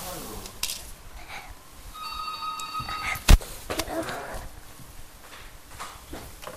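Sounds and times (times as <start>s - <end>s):
faint noise: 0.0s - 6.5s
telephone ringing with a steady electronic tone: 2.0s - 3.3s.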